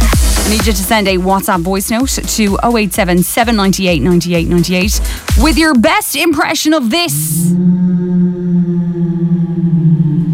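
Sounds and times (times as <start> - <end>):
speech: 0.5 - 8.4
eerie ghostly whale-like moan: 7.1 - 10.3.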